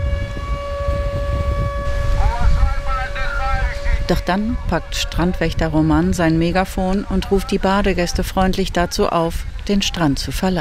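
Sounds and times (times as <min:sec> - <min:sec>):
air raid siren wailing: 0:00.0 - 0:08.4
loud blustery wind: 0:00.0 - 0:10.5
rumbling surf: 0:00.0 - 0:10.5
speech: 0:04.1 - 0:10.5.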